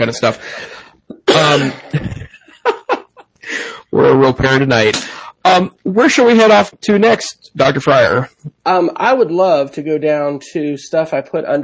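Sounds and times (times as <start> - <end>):
speech: 0.0 - 2.8, 4.0 - 11.6
person coughing in a harsh fit: 1.1 - 2.3
laughter: 1.5 - 3.6.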